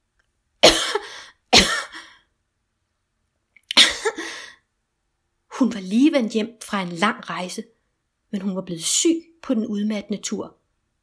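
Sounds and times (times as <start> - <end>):
woman coughing: 0.6 - 2.2, 3.7 - 4.4
speech: 5.6 - 10.6.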